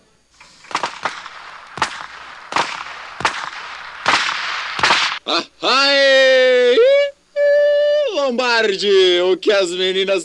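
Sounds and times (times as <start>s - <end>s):
steady hiss: 0.0s - 10.2s
gunshots fired into the air: 0.4s - 5.3s
speech: 5.3s - 6.1s, 8.3s - 10.2s.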